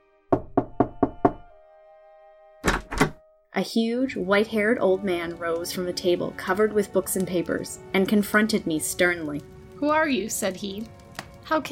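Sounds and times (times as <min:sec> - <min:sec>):
knocking on a low black wooden door: 0:00.3 - 0:01.5
heavy sharp thuds on a wooden door: 0:02.6 - 0:03.2
speech: 0:03.6 - 0:11.6.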